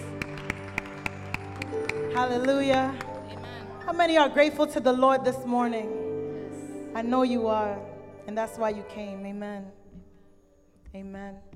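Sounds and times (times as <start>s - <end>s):
audience clapping for a choir: 0.0s - 3.9s
speech: 2.2s - 3.0s, 3.9s - 6.1s, 7.0s - 9.8s, 10.9s - 11.5s.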